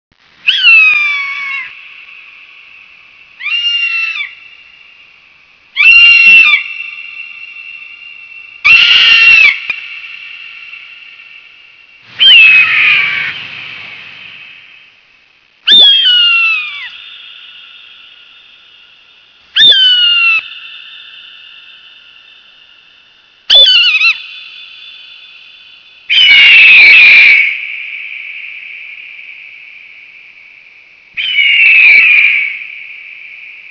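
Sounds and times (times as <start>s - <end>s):
hawk call: 0.5s - 2.1s, 3.4s - 4.6s, 5.8s - 11.4s, 12.2s - 13.7s, 15.7s - 18.8s, 19.6s - 22.4s, 23.5s - 25.4s, 26.1s - 28.6s, 31.2s - 33.1s.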